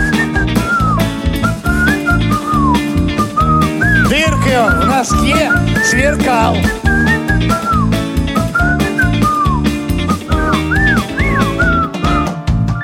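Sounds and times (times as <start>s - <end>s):
person whistling a sliding wavering melody: 0.0s - 12.8s
rhythmic music backing with a thumping beat: 0.0s - 12.8s
speech: 5.0s - 7.7s.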